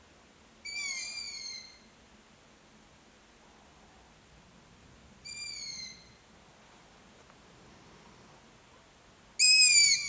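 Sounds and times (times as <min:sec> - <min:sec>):
long-eared owl squeaky call: 0:00.6 - 0:01.9, 0:05.2 - 0:06.2, 0:09.4 - 0:10.0.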